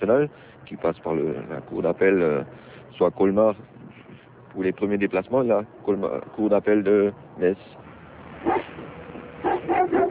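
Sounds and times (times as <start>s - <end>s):
speech: 0.0s - 3.8s, 4.5s - 7.8s
search dogs trained to find human remains barking and yipping: 8.4s - 10.0s.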